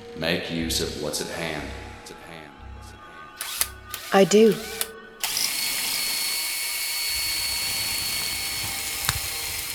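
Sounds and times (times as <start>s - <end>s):
speech: 0.2s - 1.8s, 4.1s - 4.8s
cordless drill whirring with a high-pitched mechanical whine: 3.4s - 9.7s.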